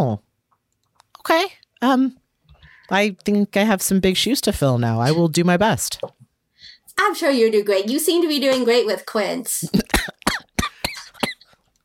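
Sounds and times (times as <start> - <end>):
speech: 1.2 - 2.2, 2.9 - 6.2, 7.0 - 10.2
raspy coughs: 9.7 - 11.6.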